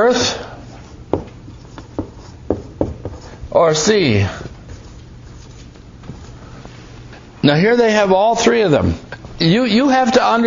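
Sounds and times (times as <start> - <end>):
scratchy writing strokes on a board: 0.7 - 6.4
speech: 3.6 - 4.4, 7.4 - 10.4.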